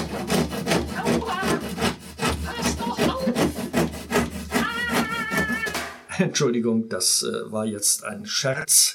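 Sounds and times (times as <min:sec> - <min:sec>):
handsaw cutting through wood: 0:00.0 - 0:05.8
speech: 0:06.2 - 0:08.9.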